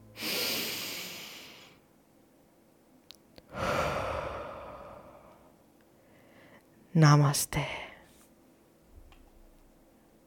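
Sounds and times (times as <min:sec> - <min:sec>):
deep breaths during a relaxing meditation exercise: 0:00.2 - 0:01.8, 0:03.5 - 0:06.7
speech: 0:07.0 - 0:07.8.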